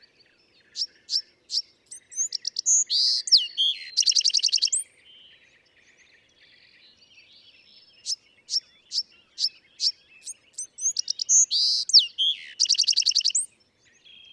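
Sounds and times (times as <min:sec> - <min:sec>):
Bewick's wren singing: 0:00.6 - 0:04.9, 0:07.1 - 0:14.3.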